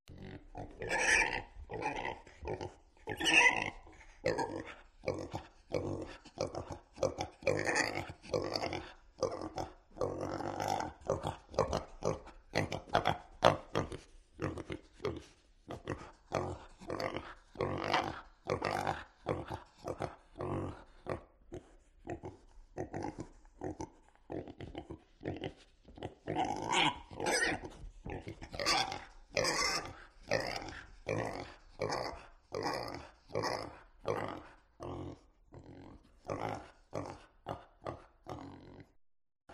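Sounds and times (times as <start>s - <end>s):
adult pigs grunting close up: 0.1s - 39.5s
adult pigs squealing: 0.2s - 13.8s, 15.8s - 21.2s, 25.4s - 35.0s.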